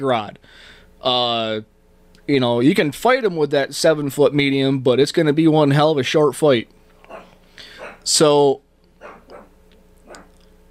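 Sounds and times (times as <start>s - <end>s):
speech: 0.0s - 1.7s, 2.3s - 7.2s, 8.0s - 8.6s
steady low hum: 0.0s - 10.6s
dog barking: 7.1s - 8.1s, 9.0s - 10.4s.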